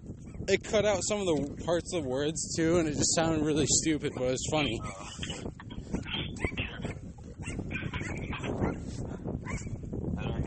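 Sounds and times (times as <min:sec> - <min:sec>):
speech: 0:00.5 - 0:05.6
small dog yapping in shrill bursts: 0:06.0 - 0:09.8.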